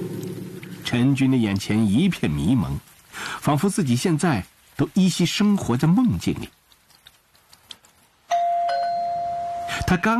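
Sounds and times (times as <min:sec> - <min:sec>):
speech: 0:00.9 - 0:06.6, 0:09.9 - 0:10.1
apartment doorbell ringing: 0:08.3 - 0:10.1.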